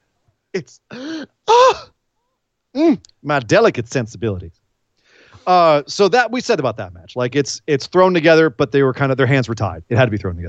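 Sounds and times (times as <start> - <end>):
speech: 0.6 - 1.9, 2.8 - 4.6, 5.4 - 10.4
person letting out exaggerated theatrical gasps: 0.9 - 1.9.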